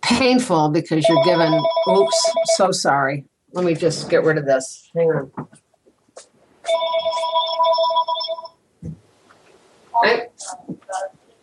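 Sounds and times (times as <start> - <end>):
speech: 0.1 - 5.6, 6.2 - 8.4, 10.0 - 11.2
telephone ringing in an electronic trill: 1.0 - 2.7, 6.7 - 8.6.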